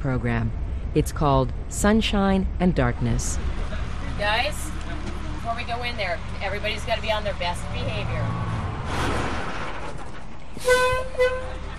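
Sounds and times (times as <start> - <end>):
speech: 0.0 - 3.6, 4.2 - 4.8, 5.5 - 9.4, 10.6 - 11.6
chartered bus rumbling and hissing as it pulls into a parking lot: 0.0 - 11.7
bus horn toots: 10.6 - 11.7.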